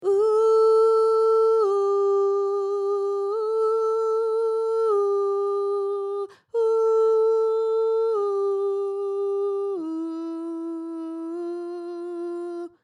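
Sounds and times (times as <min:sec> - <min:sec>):
jazz soprano ooh vocal: 0:00.0 - 0:12.8.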